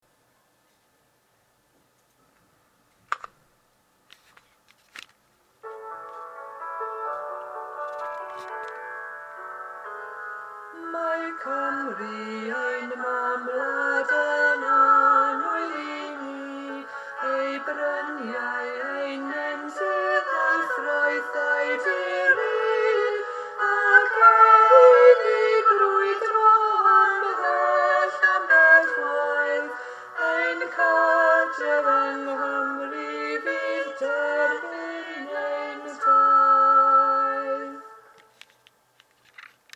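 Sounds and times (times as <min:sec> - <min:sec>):
alto duet singing a verse: 0:09.4 - 0:38.2.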